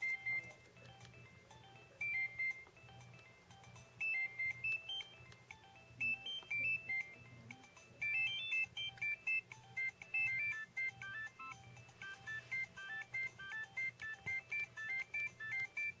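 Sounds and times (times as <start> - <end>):
Nokia 2610 ringtone clock alert: 0.0 - 15.9.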